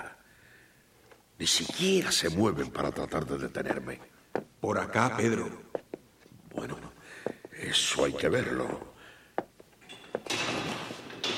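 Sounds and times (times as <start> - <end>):
speech: 1.4 - 5.6, 6.6 - 6.8, 7.6 - 8.9
prison cell door opening and closing: 9.8 - 11.3.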